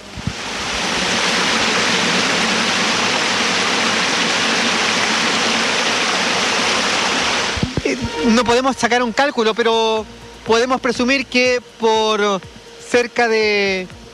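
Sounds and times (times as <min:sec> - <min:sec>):
rainwater pouring into a storm drain: 0:00.2 - 0:07.8
speech: 0:08.3 - 0:14.0.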